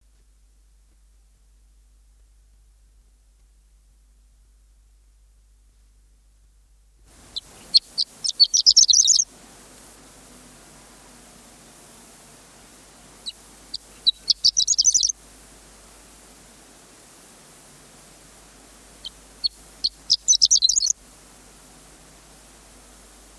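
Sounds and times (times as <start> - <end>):
songbirds: 7.1 - 23.3
horned lark: 7.3 - 9.3, 13.2 - 15.2, 19.0 - 21.0.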